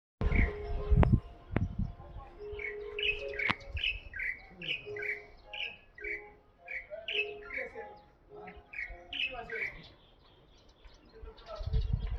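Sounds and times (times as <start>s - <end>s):
heavy low thumps: 0.2s - 2.3s
Pycnonotus sinensis light-vented bulbul chirping: 2.4s - 10.2s.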